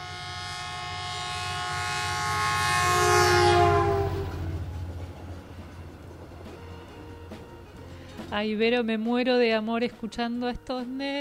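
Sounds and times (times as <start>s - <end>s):
train horn: 0.0s - 8.3s
rolling rail rumble of a passing train: 0.0s - 9.6s
speech: 8.4s - 11.1s.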